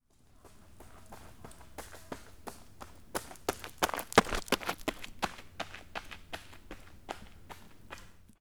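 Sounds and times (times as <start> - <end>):
person running in baseball: 0.4 - 8.3.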